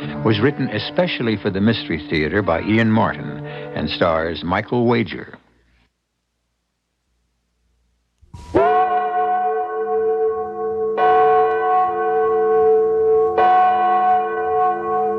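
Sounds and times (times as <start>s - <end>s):
speech: 0.2s - 5.4s
large bell tolling: 8.4s - 15.1s.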